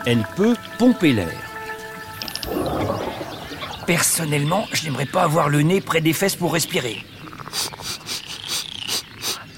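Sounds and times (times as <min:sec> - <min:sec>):
speech: 0:00.0 - 0:01.5, 0:03.9 - 0:07.8
baby frog paddling and splashing in water: 0:02.2 - 0:04.5.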